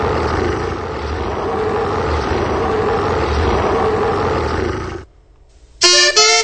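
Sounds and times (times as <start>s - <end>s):
loud rumbling tiger roar: 0.0s - 5.1s.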